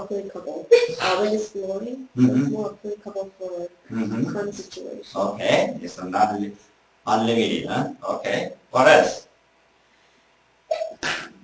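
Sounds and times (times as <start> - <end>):
speech: 0.1 - 9.2, 10.7 - 11.4
sneeze: 10.7 - 11.4.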